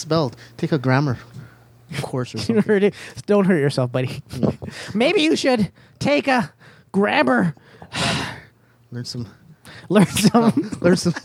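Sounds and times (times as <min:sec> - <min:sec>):
speech: 0:00.0 - 0:08.3, 0:08.9 - 0:11.2
loud heavy exhale: 0:07.6 - 0:08.5
laughter: 0:10.0 - 0:11.2.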